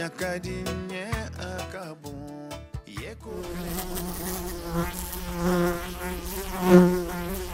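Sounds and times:
speech: 0.1s - 1.1s
tsetse fly buzzing: 3.3s - 7.4s.

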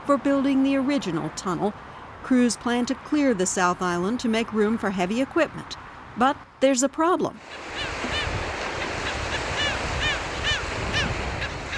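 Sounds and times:
wind on the man-made South Island of the Hampton Roads tunnel: 0.0s - 11.7s
speech: 0.1s - 8.0s
royal terns, gull-billed terns and black skimmers calling in a nesting colony: 7.4s - 11.7s
surf on the man-made South Island of the Hampton Roads tunnel: 7.4s - 11.7s.

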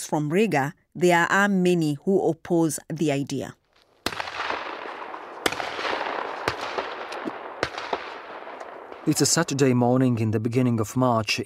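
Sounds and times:
speech: 0.0s - 3.6s, 9.0s - 11.4s
shotgun fire at clay target shooting in a snowy field: 4.0s - 9.2s.

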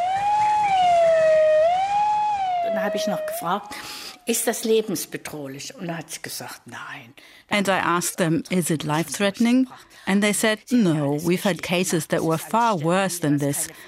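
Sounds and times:
ambulance siren wailing as the ambulance arrives: 0.0s - 4.2s
speech: 2.9s - 13.8s.

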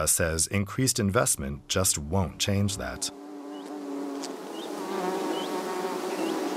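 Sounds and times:
speech: 0.0s - 3.2s
honeybees buzzing around a hive opened by a beekeeper in Morocco: 2.4s - 6.5s.

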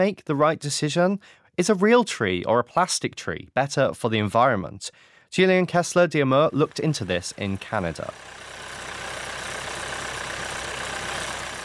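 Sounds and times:
speech: 0.0s - 8.4s
tractor engine idling on a Christmas tree farm in Canada: 6.5s - 11.6s.

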